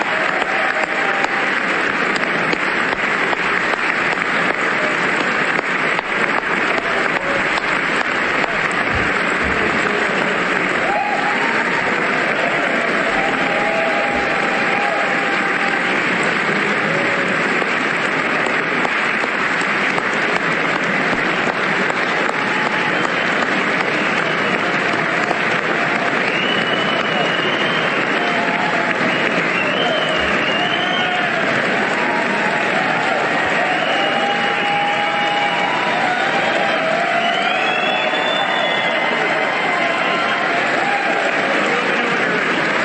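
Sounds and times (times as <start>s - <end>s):
faint cheers: 0.0s - 42.8s
large crowd applauding in a standing ovation: 0.0s - 42.8s
whistles: 26.2s - 28.2s, 29.0s - 31.3s, 33.7s - 35.6s, 37.1s - 39.1s.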